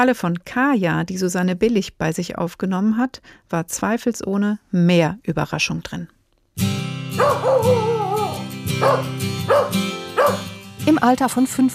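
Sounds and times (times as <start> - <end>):
speech: 0.0 - 6.7, 8.8 - 9.3, 10.9 - 11.7
young female shepherd-mix puppy from Romania barking and yipping: 7.2 - 10.6.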